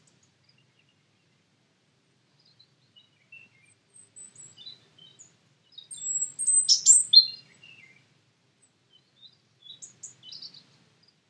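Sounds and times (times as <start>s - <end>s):
European robin Erithacus rubecula singing: 2.4s - 8.0s, 8.9s - 10.6s.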